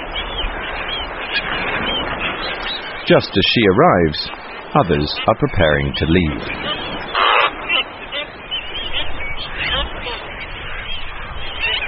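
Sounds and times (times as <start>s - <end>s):
seven-month-old black-footed albatross chicks honking and croaking: 0.0s - 11.8s
speech: 3.1s - 6.8s.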